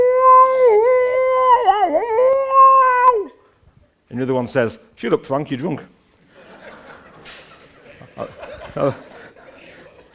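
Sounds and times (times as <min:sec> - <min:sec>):
human voice imitating a whale call: 0:00.0 - 0:03.4
speech: 0:04.2 - 0:06.0, 0:08.2 - 0:09.0
laughter: 0:06.3 - 0:10.1.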